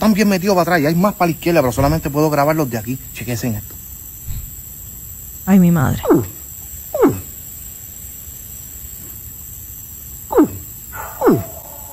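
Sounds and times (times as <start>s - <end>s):
speech: 0.0s - 3.8s, 5.5s - 6.4s
steady outdoor hiss: 0.0s - 11.9s
caiman bellowing in Vega Baja: 5.9s - 7.5s, 10.3s - 11.9s.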